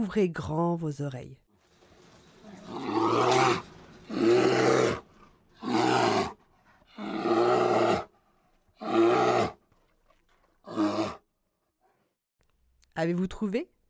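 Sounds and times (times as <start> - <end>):
speech: 0.0 - 1.4, 13.0 - 13.8
bear growling loudly: 2.4 - 12.0.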